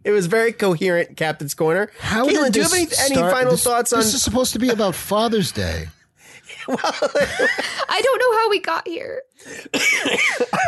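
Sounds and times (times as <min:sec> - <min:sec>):
speech: 0:00.0 - 0:06.0, 0:06.6 - 0:10.6
laughter: 0:06.6 - 0:08.2, 0:09.9 - 0:10.6
harsh raspy coughing: 0:09.5 - 0:10.6.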